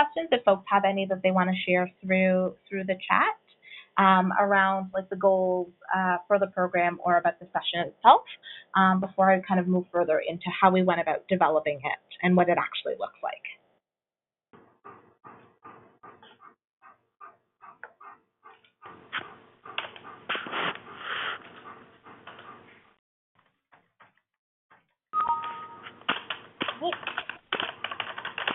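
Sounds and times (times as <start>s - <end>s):
speech: 0.1s - 13.6s
keyboard typing by a few people: 25.2s - 28.5s.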